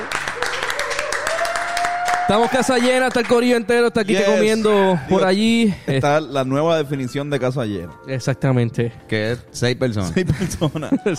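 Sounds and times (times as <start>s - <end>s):
few people clapping together: 0.0s - 3.8s
speech: 2.3s - 11.1s
laughter: 10.0s - 11.1s.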